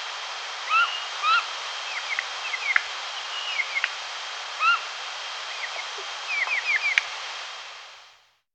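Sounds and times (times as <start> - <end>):
spotted nutcracker Nucifraga caryocatactes: 0.6 - 7.1.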